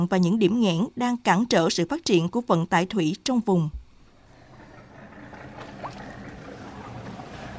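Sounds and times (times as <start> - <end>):
speech: 0.0 - 3.8
500-ton barge engine drone in a canal: 4.0 - 7.5
water wash of a barge moving through a canal: 4.1 - 7.5.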